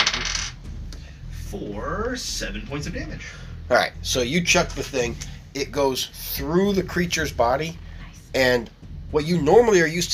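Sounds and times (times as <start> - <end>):
dice clattering and rattling across a hard table surface: 0.0 - 0.6
speech: 1.5 - 10.1.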